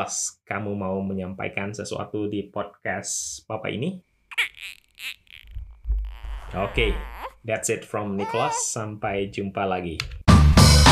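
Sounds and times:
speech: 0.0s - 4.5s, 6.5s - 10.2s
newborn baby squeaking and cooing: 4.3s - 7.4s, 8.0s - 8.7s.

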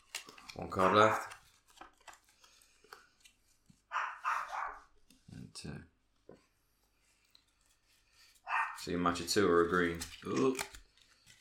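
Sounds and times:
speech: 0.6s - 1.3s, 8.9s - 10.8s
dog barking: 3.9s - 4.9s, 8.5s - 8.9s.

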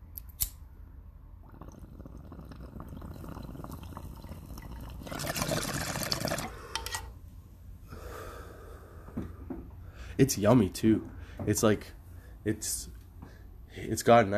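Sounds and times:
sharp click: 0.1s - 0.6s
long watery draw of smoke: 1.4s - 7.2s
quiet breathing: 7.8s - 10.2s, 11.1s - 12.5s, 13.2s - 14.0s
speech: 10.2s - 13.0s, 13.8s - 14.3s.

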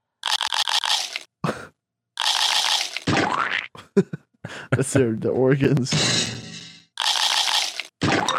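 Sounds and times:
cartoonish munching effect with crunchy bites: 0.1s - 1.3s, 2.2s - 3.7s, 7.0s - 8.2s
speech: 4.0s - 4.2s, 4.8s - 6.4s.

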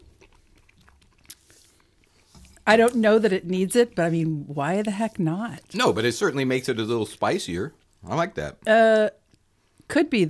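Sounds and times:
soft low chewing crunches of ginger snap: 0.0s - 3.2s
biting into a crunchy ginger snap cookie: 0.0s - 6.1s
speech: 2.7s - 9.2s, 9.9s - 10.2s.

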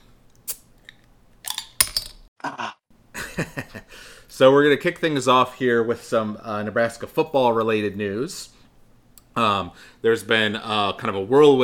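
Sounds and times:
beer glasses clinking during a toast: 1.5s - 2.2s
speech: 3.4s - 8.6s, 9.4s - 11.6s.

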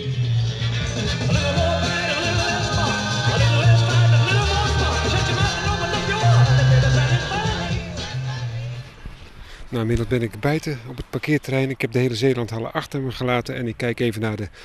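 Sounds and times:
1950s rock and roll song by a full band: 0.0s - 8.8s
speech: 1.0s - 1.6s, 9.7s - 14.6s.

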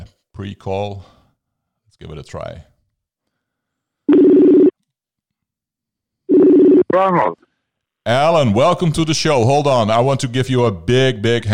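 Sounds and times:
speech: 0.4s - 1.2s, 1.9s - 2.7s, 6.9s - 7.4s, 8.0s - 11.5s
phone line ringing with electronic ring bursts: 4.1s - 4.7s, 6.3s - 7.1s.

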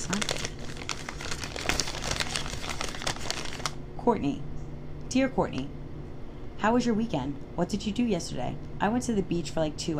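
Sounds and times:
paper crinkling as a tightly folded note is opened: 0.0s - 3.8s
speech: 0.1s - 0.3s, 4.0s - 4.5s, 5.1s - 5.8s, 6.6s - 9.9s.

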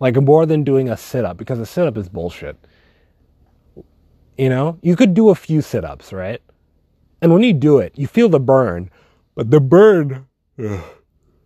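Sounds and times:
speech: 0.0s - 2.8s, 3.8s - 6.5s, 7.2s - 11.0s
person yawning: 10.6s - 11.1s.

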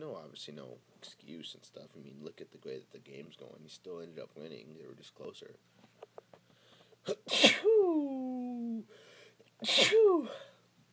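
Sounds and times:
speech: 0.2s - 5.8s, 7.0s - 8.1s, 9.6s - 10.5s
person sneezing: 7.0s - 8.8s, 9.6s - 10.6s.

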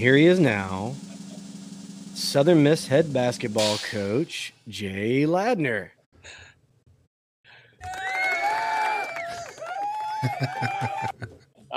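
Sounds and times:
speech: 0.0s - 1.1s, 2.2s - 6.4s, 10.2s - 11.7s
laughter: 1.0s - 1.4s, 9.3s - 11.7s
people clapping: 7.7s - 11.3s
studio crowd cheering with whoops: 7.7s - 11.3s.

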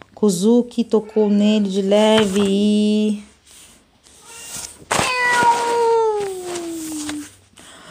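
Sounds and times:
speech: 0.2s - 3.3s
kitten meowing: 4.2s - 6.0s.

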